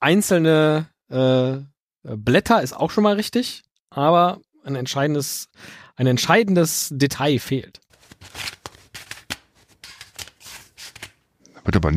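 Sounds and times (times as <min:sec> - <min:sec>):
speech: 0:00.0 - 0:08.6, 0:11.7 - 0:11.9
deck of playing cards riffling: 0:07.9 - 0:11.2.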